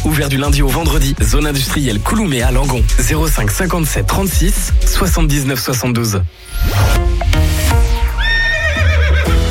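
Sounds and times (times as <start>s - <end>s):
speech: 0.1s - 7.3s
horse neighing in a long quavering whinny: 8.2s - 9.3s.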